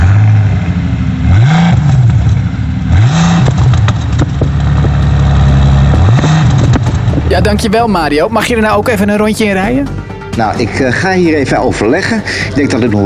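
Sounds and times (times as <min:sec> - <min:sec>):
12-cylinder 625 hp sports car engine starting and revving: 0:00.0 - 0:08.0
speech: 0:07.4 - 0:13.0.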